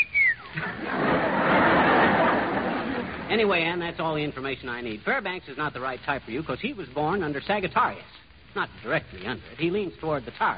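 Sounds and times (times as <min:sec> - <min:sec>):
mouth whistle sliding downward in pitch: 0:00.0 - 0:00.5
crowd chatter: 0:00.0 - 0:03.5
crowd laughter: 0:00.4 - 0:03.3
speech: 0:03.3 - 0:10.5.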